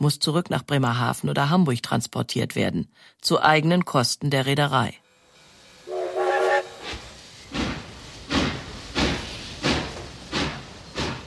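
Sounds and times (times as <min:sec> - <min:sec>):
speech: 0:00.0 - 0:05.0
steam train pulling railway carriages departing with hissing exhaust chuffs: 0:05.1 - 0:11.2
steam train whistle blast: 0:05.8 - 0:07.0.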